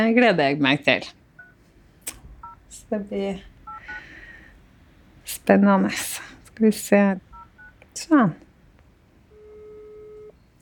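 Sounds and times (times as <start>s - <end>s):
speech: 0.0s - 1.2s, 2.9s - 4.0s, 5.3s - 7.3s, 8.0s - 8.4s
low hum: 0.0s - 10.6s
telephone ringback tone while calling: 3.7s - 4.0s, 7.4s - 7.8s, 9.3s - 10.4s.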